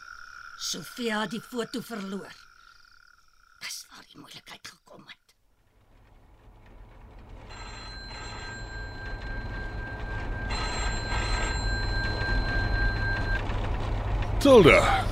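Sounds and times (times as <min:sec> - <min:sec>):
speech: 0:00.6 - 0:02.5, 0:14.4 - 0:15.1
telephone ringing with long steady electronic rings: 0:07.2 - 0:14.7.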